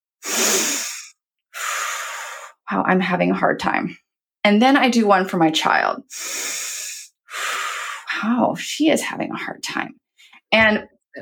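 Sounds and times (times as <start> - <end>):
deep breath: 0.2 - 2.6, 6.1 - 8.1
speech: 2.7 - 6.6, 8.2 - 11.2.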